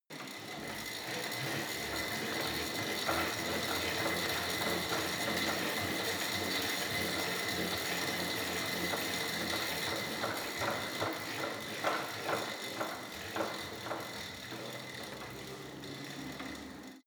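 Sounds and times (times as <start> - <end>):
hard indoor bike sequence in a fitness studio: 0.0 - 17.0.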